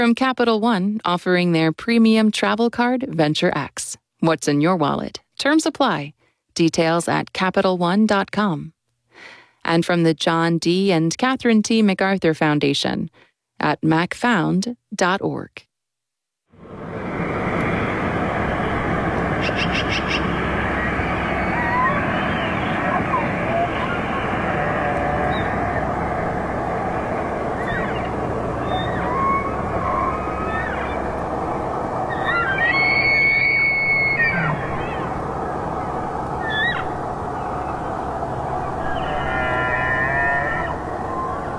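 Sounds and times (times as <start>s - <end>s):
speech: 0.0s - 15.7s
broad wash of outdoor noise: 16.5s - 41.5s
elk bugling and squealing during fall migration: 17.1s - 41.5s.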